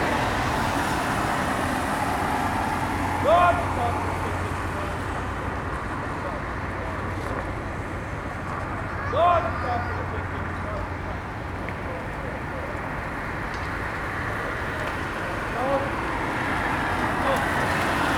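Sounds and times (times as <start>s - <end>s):
steady dense outdoor rumble of traffic: 0.0s - 18.1s
shouted drill command on a parade ground: 3.2s - 4.0s, 9.0s - 10.2s.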